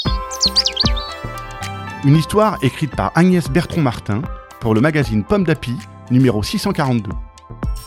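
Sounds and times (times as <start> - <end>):
birds chirping in bright tweets and warbling trills: 0.0 - 2.2
speech: 2.0 - 7.3.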